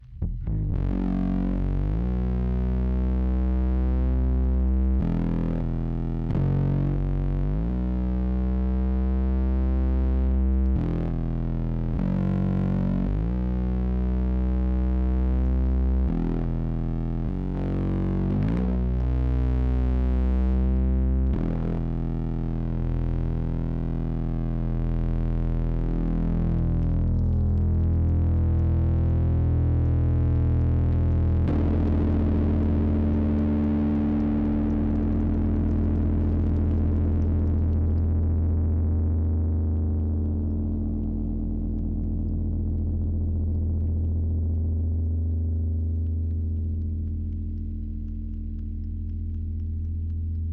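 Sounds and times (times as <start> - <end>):
bass guitar through bass boost DI effect pedal: 0.0 - 50.5.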